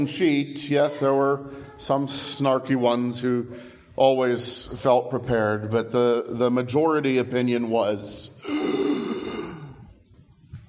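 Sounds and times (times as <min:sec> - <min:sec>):
speech: 0:00.0 - 0:09.0
person imitating a shocked gasp during a sermon: 0:08.4 - 0:09.9.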